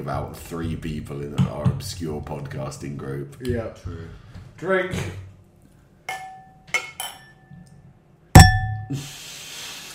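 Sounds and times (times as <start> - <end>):
speech: 0.0 - 5.3, 8.9 - 9.1
glass clinking against a microphone: 6.1 - 7.5, 8.4 - 9.0
low thud: 8.4 - 8.9.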